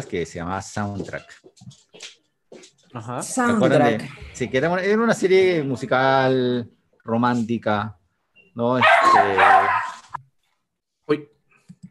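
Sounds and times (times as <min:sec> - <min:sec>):
speech: 0:00.0 - 0:01.8, 0:02.9 - 0:08.0, 0:08.6 - 0:09.6, 0:11.1 - 0:11.3
dog whining and yelping: 0:08.8 - 0:10.2.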